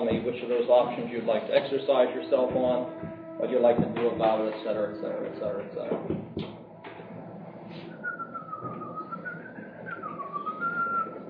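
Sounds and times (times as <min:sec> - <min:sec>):
speech: 0:00.3 - 0:06.5
soft knocks: 0:02.3 - 0:04.8, 0:05.4 - 0:07.1
person whistling a steady wavering tune: 0:07.8 - 0:11.2.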